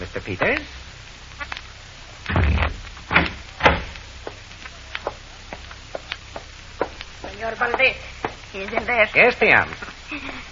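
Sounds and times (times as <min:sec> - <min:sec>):
speech: 0:00.2 - 0:00.8, 0:07.5 - 0:10.3
heavy thick soundproofed door groaning and thudding shut: 0:02.3 - 0:03.9.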